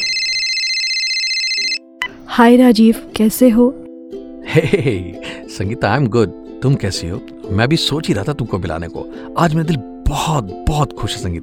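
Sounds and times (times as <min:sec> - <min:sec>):
telephone ringing with electronic trilling tone: 0:00.0 - 0:02.1
speech: 0:02.4 - 0:03.8, 0:04.5 - 0:11.4.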